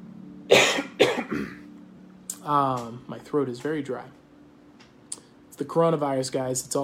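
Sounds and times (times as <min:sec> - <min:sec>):
faint steady hum: 0:00.0 - 0:06.8
person coughing: 0:00.5 - 0:01.7
speech: 0:02.4 - 0:04.2, 0:05.6 - 0:06.8.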